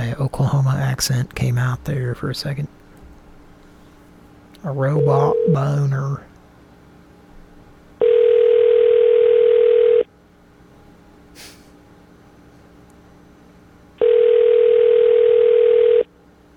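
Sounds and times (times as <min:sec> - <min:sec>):
speech: 0:00.1 - 0:02.8, 0:04.6 - 0:06.3
telephone buzzing tone from a phone melting on a hot plate: 0:04.9 - 0:05.8, 0:08.0 - 0:10.1, 0:14.0 - 0:16.1.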